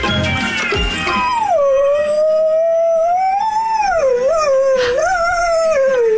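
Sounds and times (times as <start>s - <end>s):
song playing: 0.0s - 1.6s
border collie howling along to music: 1.0s - 6.1s.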